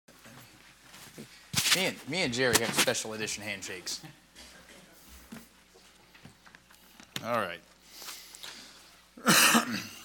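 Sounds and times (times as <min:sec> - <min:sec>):
speech: 0:01.2 - 0:04.2, 0:07.2 - 0:07.7
loud harsh cough: 0:09.2 - 0:10.0
rasping throat clearing: 0:09.2 - 0:10.0.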